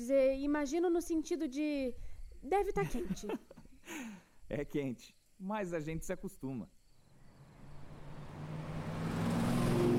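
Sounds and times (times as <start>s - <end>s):
speech: 0.0s - 6.8s
laughter: 2.8s - 3.8s
1980s Volkswagen Santana car engine passing: 7.1s - 9.9s.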